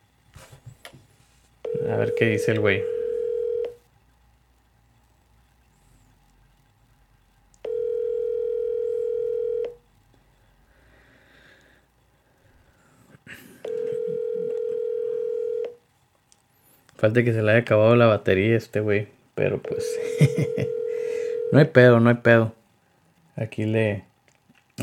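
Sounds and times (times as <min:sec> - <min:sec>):
telephone dial tone after a call drops: 0:01.7 - 0:03.8, 0:07.6 - 0:09.8, 0:13.6 - 0:15.8, 0:20.4 - 0:21.6
speech: 0:01.9 - 0:03.0, 0:17.0 - 0:20.8, 0:21.5 - 0:22.6, 0:23.4 - 0:24.1
laughter: 0:19.9 - 0:20.7.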